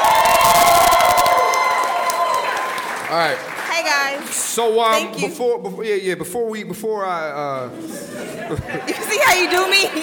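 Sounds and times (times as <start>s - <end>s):
live audience cheering and whooping as performer is introduced: 0.0s - 3.0s
scattered clapping: 0.0s - 5.0s, 9.2s - 10.0s
speech: 3.1s - 10.0s
laughter: 7.5s - 10.0s.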